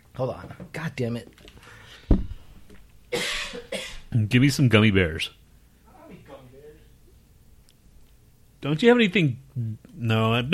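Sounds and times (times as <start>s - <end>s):
speech: 0.2s - 1.5s, 4.1s - 5.4s, 8.6s - 10.5s
person coughing into the microphone: 3.1s - 4.1s.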